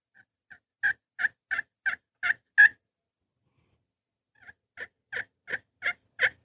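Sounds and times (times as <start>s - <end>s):
turkey hen tree calls on the roost: 0.1s - 2.8s, 4.4s - 6.4s.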